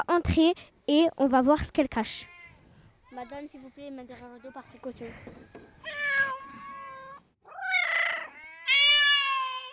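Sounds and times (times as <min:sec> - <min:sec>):
speech: 0:00.2 - 0:02.3, 0:03.2 - 0:06.0
several cats meowing in long drawn-out wails: 0:05.8 - 0:09.7.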